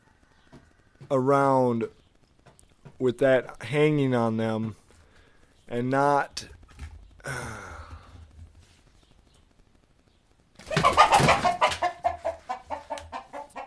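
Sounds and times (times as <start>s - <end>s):
speech: 1.1s - 2.0s, 3.0s - 4.8s, 5.7s - 6.6s
rooster calling: 10.7s - 13.6s.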